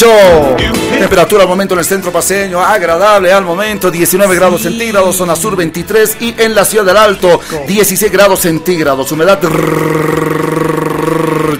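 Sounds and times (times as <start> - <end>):
speech: 0.0 - 10.7
voice rolling an R imitating an outboard boat motor: 9.4 - 11.5.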